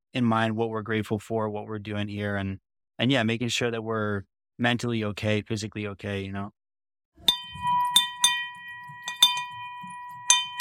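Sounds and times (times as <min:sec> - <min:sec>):
speech: 0:00.1 - 0:06.6
bell ringing: 0:07.2 - 0:10.5.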